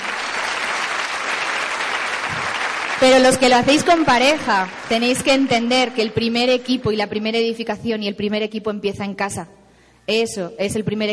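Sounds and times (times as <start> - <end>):
audience applause: 0.0 - 5.5
speech: 3.0 - 11.1.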